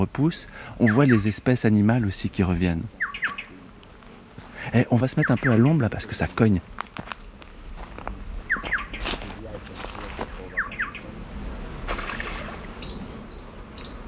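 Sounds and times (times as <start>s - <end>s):
speech: 0.0s - 3.3s, 4.7s - 7.1s
steady hiss: 0.0s - 14.0s
small white bird chirping by a river: 0.8s - 1.4s, 3.0s - 3.6s, 5.1s - 5.8s, 8.4s - 9.1s, 10.4s - 11.1s, 12.6s - 14.0s
small white bird plunging into river water: 11.8s - 12.7s.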